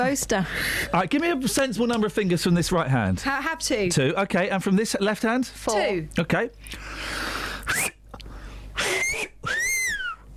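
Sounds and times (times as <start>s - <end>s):
speech: 0.0s - 7.8s
four-finger whistle: 8.8s - 10.2s.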